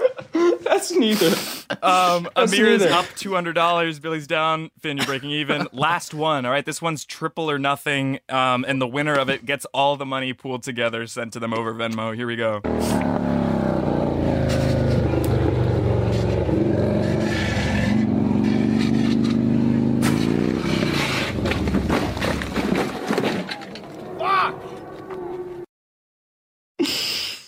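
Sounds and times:
laughter: 0:00.0 - 0:03.2, 0:05.0 - 0:05.9
speech: 0:00.8 - 0:13.3
loud motorcycle engine revving and shifting gears: 0:12.7 - 0:25.6.

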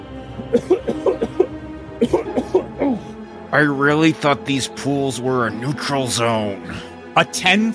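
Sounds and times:
person coughing harshly: 0:00.4 - 0:03.2
speech: 0:00.5 - 0:01.1, 0:02.0 - 0:02.2, 0:03.5 - 0:07.7.

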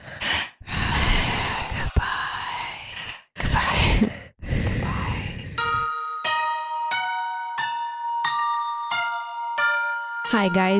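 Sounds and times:
heavy breathing: 0:00.0 - 0:05.9
bright chime-like tones: 0:05.6 - 0:10.7
speech: 0:10.3 - 0:10.7.

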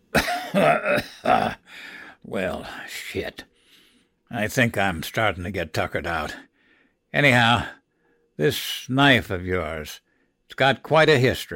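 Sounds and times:
man coughing harshly into his fist: 0:00.1 - 0:01.8
speech: 0:00.5 - 0:01.6, 0:02.2 - 0:03.5, 0:04.3 - 0:06.5, 0:07.1 - 0:07.8, 0:08.4 - 0:11.5.

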